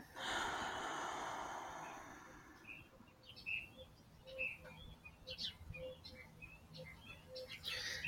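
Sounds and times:
long breathy exhale: 0.0s - 2.9s
birds chirping and tweeting in a garden: 0.0s - 8.0s.

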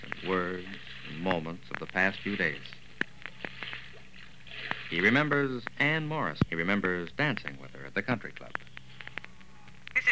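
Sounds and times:
small pebbles plopping into river water: 0.0s - 6.6s
flowing river water: 0.0s - 10.1s
speech: 0.2s - 2.8s, 4.9s - 8.7s.

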